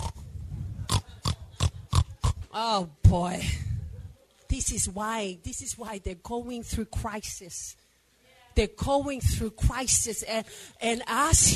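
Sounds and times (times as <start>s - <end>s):
pig grunting and oinking: 0.0s - 0.2s, 0.9s - 2.4s
speech: 2.6s - 3.6s, 4.6s - 7.8s, 8.6s - 11.5s.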